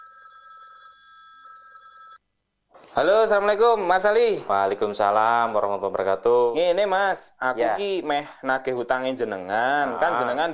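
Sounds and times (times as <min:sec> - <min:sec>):
telephone ringing as a call is placed: 0:00.0 - 0:02.2
speech: 0:03.0 - 0:10.5.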